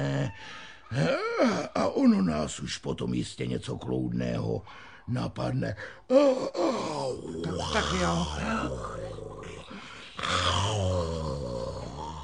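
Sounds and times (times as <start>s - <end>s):
drowsy sleeping dogs groaning and growling low in their throats: 0.0s - 1.8s, 6.2s - 12.2s
speech: 0.3s - 9.0s.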